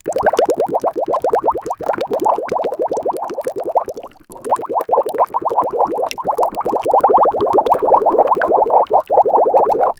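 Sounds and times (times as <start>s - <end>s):
bubbles falling: 0.0s - 9.9s.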